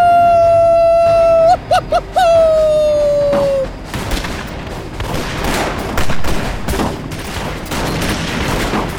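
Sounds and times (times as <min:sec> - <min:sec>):
sustained high wavering howl-like tone: 0:00.0 - 0:08.9
blasts at night from canyon walls: 0:03.9 - 0:08.9
gunfire barrage at night from canyon walls: 0:03.9 - 0:08.9.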